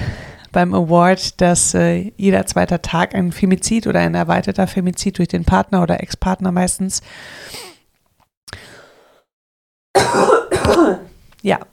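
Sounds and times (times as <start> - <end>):
speech: 0.5 - 7.7, 10.7 - 11.7
ill person clearing throat: 10.0 - 11.1
ill person coughing: 10.0 - 11.2.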